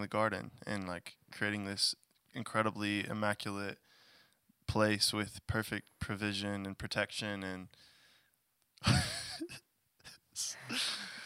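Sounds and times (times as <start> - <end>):
speech: 0.0 - 3.9, 4.7 - 7.9, 8.8 - 9.6
person yawning with a moaning vocal tone: 10.5 - 11.2.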